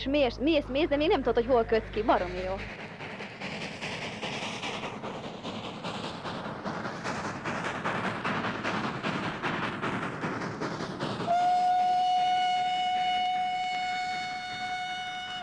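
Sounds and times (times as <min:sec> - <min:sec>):
speech: 0:00.0 - 0:02.9
train departing and rumbling along the rails: 0:00.0 - 0:15.4
long sustained train whistle blast: 0:11.3 - 0:15.4.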